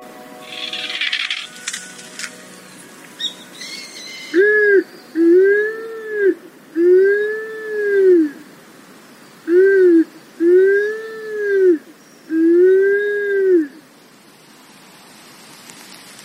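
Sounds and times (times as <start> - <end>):
strong north wind rustling in a seaside pine grove: 0.0 - 16.2
Japanese wood pigeon cooing in a seaside pine grove: 3.2 - 8.4, 9.5 - 13.8.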